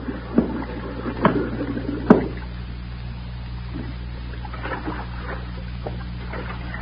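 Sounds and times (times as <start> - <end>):
air bubbles rising through water: 0.0 - 6.8.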